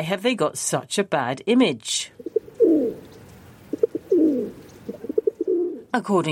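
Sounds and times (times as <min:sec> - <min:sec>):
speech: 0:00.0 - 0:02.3, 0:06.0 - 0:06.2
pigeons cooing: 0:02.2 - 0:05.9.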